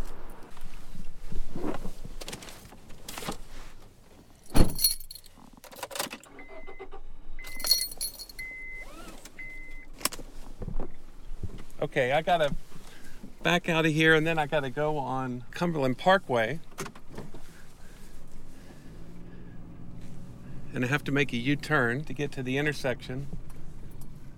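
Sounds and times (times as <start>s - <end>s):
keys jangling and rustling: 4.4s - 6.0s, 7.5s - 8.5s
speech: 11.9s - 12.6s, 13.4s - 16.7s, 20.8s - 23.4s.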